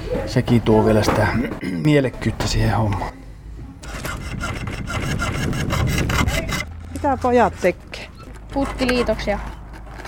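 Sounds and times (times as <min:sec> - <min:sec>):
speech: 0:00.1 - 0:03.2, 0:07.0 - 0:07.9, 0:08.5 - 0:09.5
boys hand sawing metal in fine weather: 0:03.8 - 0:07.6, 0:08.2 - 0:09.4.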